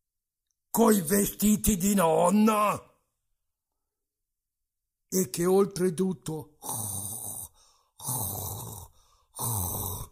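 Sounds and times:
speech: 0.8 - 2.9, 5.1 - 7.1, 8.0 - 8.8, 9.4 - 10.1
person imitating a wolf snoring: 6.6 - 10.1
short breaths: 7.5 - 8.0, 8.9 - 9.4.

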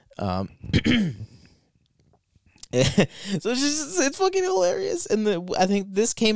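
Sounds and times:
speech: 0.2 - 1.3, 2.7 - 6.3
cartoon character coughing and gasping for air: 0.7 - 1.3.

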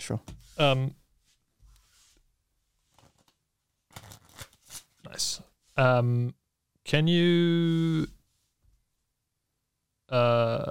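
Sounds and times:
speech: 0.1 - 1.0, 5.0 - 8.2, 10.1 - 10.6
deck of playing cards rustling during handling: 2.8 - 5.0.

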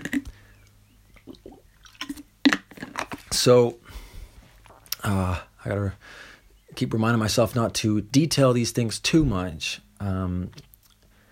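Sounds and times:
person drinking water: 0.0 - 0.4, 1.2 - 3.3
soft wet mouth noises: 0.0 - 0.4, 1.1 - 3.4
sharp swallow: 1.1 - 2.2
gulping water: 1.2 - 2.2
speech: 3.4 - 3.8, 5.0 - 10.7.

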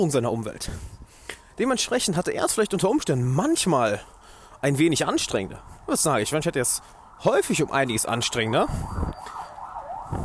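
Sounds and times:
speech: 0.0 - 1.0, 1.6 - 9.2
low traffic rumble: 0.0 - 10.2
emergency vehicle siren wailing outside: 2.8 - 10.2.

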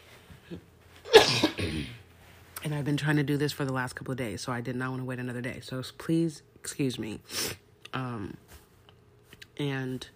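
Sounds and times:
speech: 0.5 - 0.7, 2.6 - 8.5, 9.6 - 10.1
person coughing: 0.5 - 2.1.

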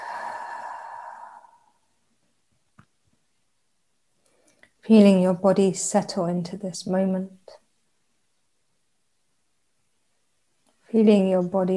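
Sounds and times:
gentle exhale during a guided meditation: 0.0 - 1.9
speech: 4.8 - 7.6, 11.0 - 11.7.

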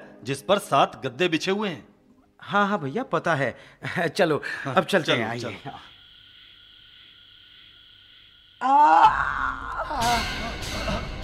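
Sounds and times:
speech: 0.2 - 5.9, 8.6 - 10.4
faint steady hum: 1.7 - 11.2
man crying out in pain and groaning: 8.6 - 11.2.

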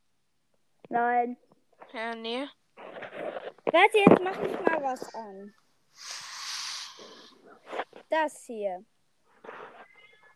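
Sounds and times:
speech: 0.9 - 2.6, 3.6 - 6.1, 7.0 - 9.6
cat snuffling breath: 6.0 - 7.9
cat hissing: 6.0 - 8.1, 9.4 - 10.3.

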